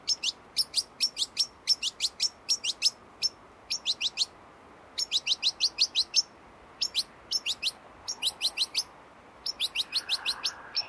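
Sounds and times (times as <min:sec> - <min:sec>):
European goldfinch Carduelis carduelis twittering: 0:00.0 - 0:04.3, 0:05.0 - 0:10.8.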